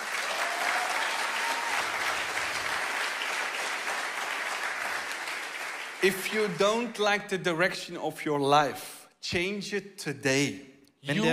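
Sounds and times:
large crowd applauding: 0:00.0 - 0:06.9
speech: 0:06.0 - 0:11.3.

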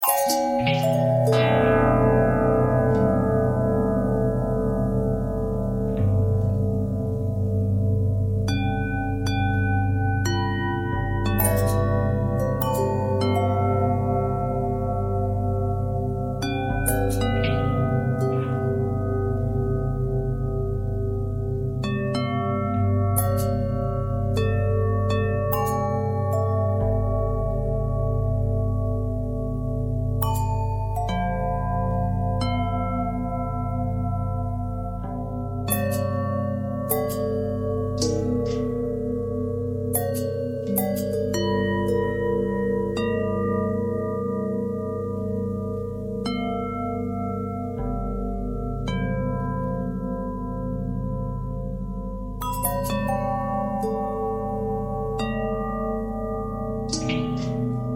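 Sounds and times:
long bell harmonic twist: 0:00.0 - 0:57.9.

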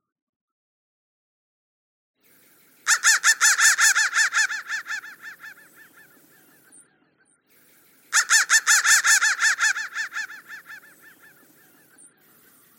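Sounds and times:
crow cawing: 0:02.8 - 0:06.6, 0:08.1 - 0:11.8.

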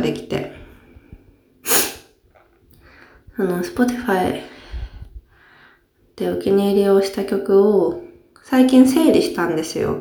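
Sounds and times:
speech: 0:00.1 - 0:00.4, 0:03.4 - 0:04.5, 0:06.2 - 0:09.9
person sneezing: 0:01.6 - 0:02.1.

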